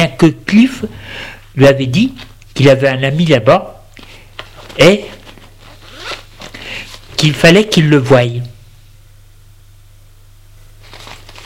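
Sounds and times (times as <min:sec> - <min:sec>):
low steady hum: 0:00.0 - 0:11.4
speech: 0:00.2 - 0:03.7, 0:04.8 - 0:05.2, 0:07.2 - 0:08.5
paper being picked up and crinkling: 0:04.0 - 0:07.3, 0:10.8 - 0:11.4.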